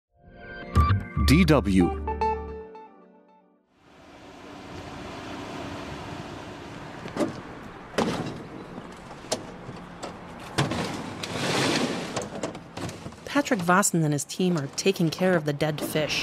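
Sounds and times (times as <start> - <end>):
speech: 1.3 - 2.1, 13.5 - 16.2
outdoor wind: 3.8 - 16.2
heavy barrels thudding into a pickup truck bed: 7.2 - 8.6, 9.3 - 13.3.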